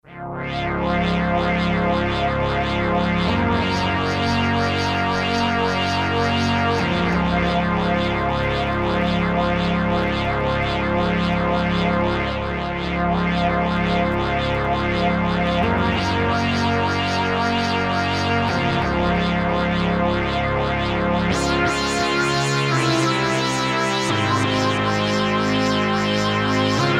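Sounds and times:
synthesizer: 0:00.0 - 0:26.9.

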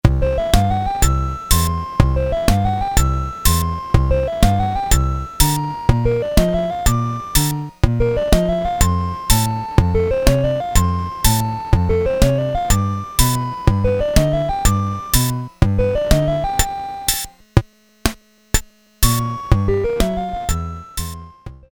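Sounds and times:
Casio SK-1 keyboard four-beat rhythm: 0:00.4 - 0:17.7, 0:18.6 - 0:21.3.

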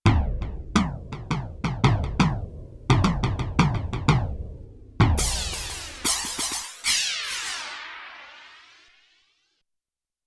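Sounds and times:
bass drum from a sampler: 0:00.0 - 0:07.1
flanged cymbals from a sampler: 0:05.2 - 0:08.7.

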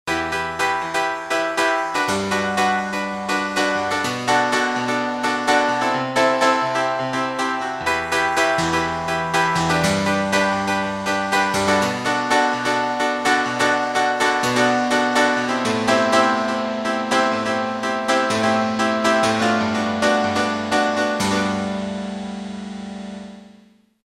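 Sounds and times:
velocity-sensitive piano on a digital sound module: 0:00.0 - 0:24.0.

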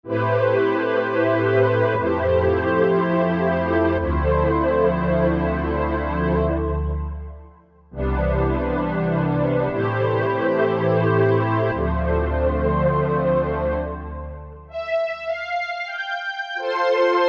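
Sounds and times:
stereo strings on a Korg MSC-1S: 0:00.1 - 0:17.1.

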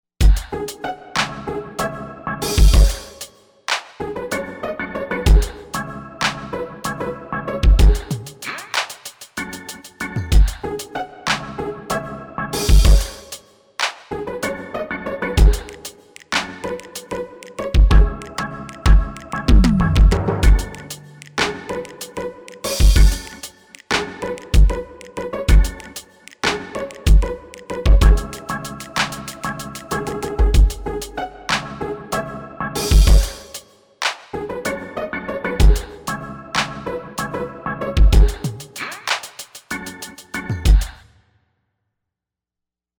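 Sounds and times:
AKAI XR20 factory patterns: 0:00.2 - 0:01.3, 0:02.4 - 0:03.9, 0:05.3 - 0:05.6, 0:07.6 - 0:11.4, 0:12.6 - 0:14.0, 0:15.4 - 0:31.7, 0:32.8 - 0:34.3, 0:35.6 - 0:36.7, 0:38.0 - 0:41.0.

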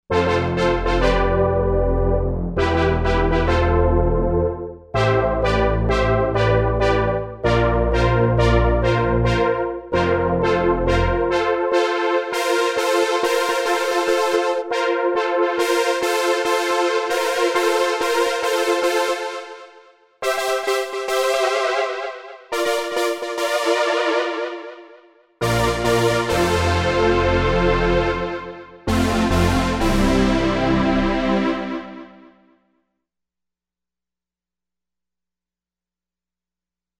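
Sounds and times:
80s synth brass: 0:00.1 - 0:32.3.

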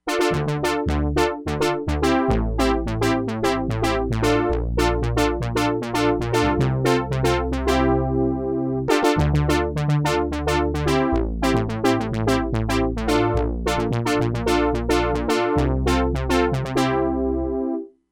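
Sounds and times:
Crumar Bit 99 synthesizer brass sound: 0:00.0 - 0:17.8.

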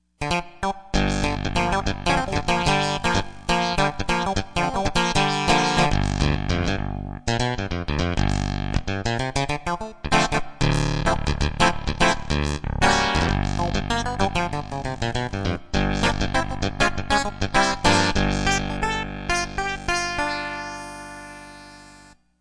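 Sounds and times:
synthesizer clavinet preset: 0:00.2 - 0:22.1.

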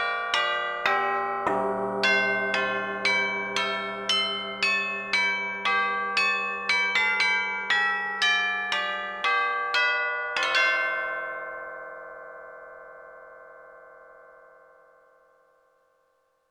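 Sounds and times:
tubular bell on a sampler synthesizer: 0:00.1 - 0:11.5.

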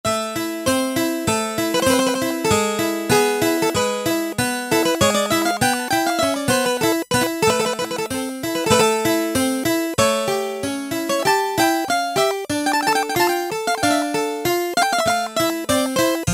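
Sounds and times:
E-mu Proteus-1 harpsichord preset: 0:00.1 - 0:16.3.

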